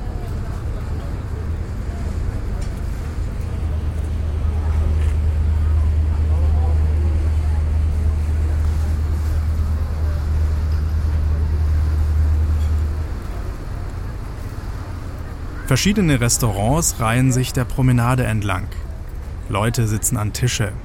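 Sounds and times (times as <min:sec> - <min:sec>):
ferry engine droning low while crossing a harbour: 0:00.0 - 0:20.8
water rushing against the ferry hull: 0:00.0 - 0:20.8
speech: 0:15.7 - 0:18.9, 0:19.5 - 0:20.8.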